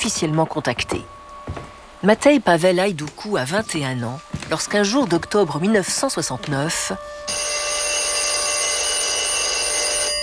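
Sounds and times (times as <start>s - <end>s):
speech: 0.0s - 7.6s
telephone bell ringing: 7.3s - 10.2s.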